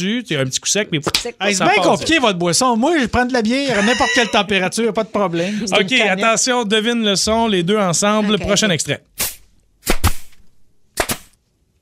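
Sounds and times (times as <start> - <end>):
speech: 0.0 - 9.3
laughter: 3.7 - 6.2
nail gun firing: 9.8 - 10.4, 11.0 - 11.4.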